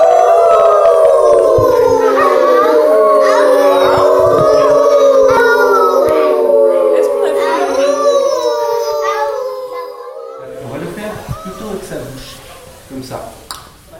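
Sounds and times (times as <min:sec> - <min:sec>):
scattered quieter vocal noises: 0:00.0 - 0:12.8
group of children imitating wolves howling: 0:00.0 - 0:13.1.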